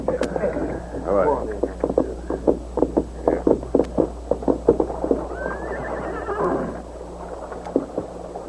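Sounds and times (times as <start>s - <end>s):
horse hooves clip-clopping: 0.0s - 8.4s
horse whinnying: 5.2s - 6.8s.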